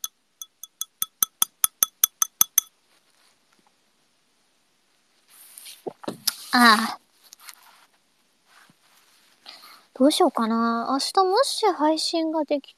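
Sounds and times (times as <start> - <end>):
glasses clinking during a toast with vegetable juice: 0.0 - 2.7
soft rustle: 2.7 - 3.9, 4.8 - 10.5
speech: 6.5 - 7.0, 10.0 - 12.7.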